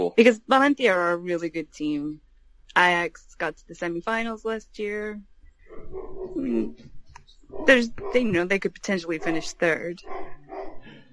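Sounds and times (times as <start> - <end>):
speech: 0.0 - 2.2, 2.8 - 6.9, 7.5 - 10.3
dogs barking and yelping: 5.7 - 6.4, 7.5 - 8.4, 10.0 - 10.9.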